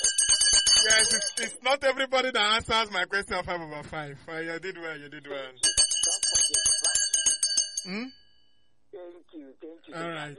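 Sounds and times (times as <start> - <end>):
bell struck rapidly in a bright jangling trill: 0.0 - 1.6, 5.6 - 8.5
speech: 0.8 - 5.8, 7.8 - 8.2, 8.9 - 10.3.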